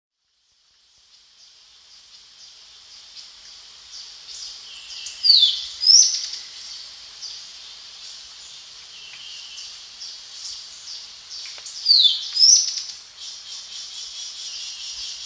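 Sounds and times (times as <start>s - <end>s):
hiss: 0.7s - 15.2s
Tepui brush finch Atlapetes personatus calling: 4.8s - 6.4s, 11.4s - 15.2s.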